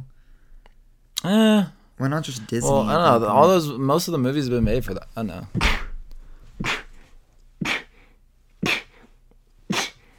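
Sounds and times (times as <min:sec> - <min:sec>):
speech: 0:01.2 - 0:05.8
person sneezing: 0:06.6 - 0:07.0, 0:07.6 - 0:09.1, 0:09.7 - 0:10.1.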